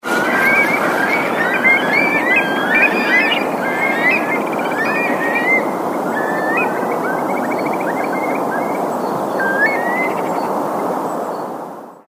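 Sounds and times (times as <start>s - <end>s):
curlews calling on the Orwell: 0.1s - 10.4s.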